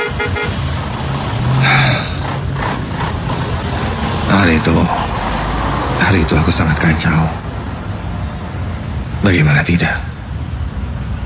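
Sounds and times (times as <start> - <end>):
car horn honking in a traffic jam: 0.0 - 0.8
traffic jam engines and road noise heard from inside a bus in Bandung: 0.0 - 11.2
speech: 4.4 - 5.2, 6.0 - 7.4, 9.2 - 10.1.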